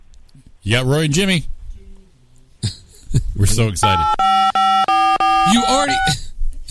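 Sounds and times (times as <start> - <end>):
speech: 0.4 - 1.5, 3.4 - 4.4, 5.5 - 6.2
electronic telephone keypad tones on a radio call-in line: 3.8 - 6.1.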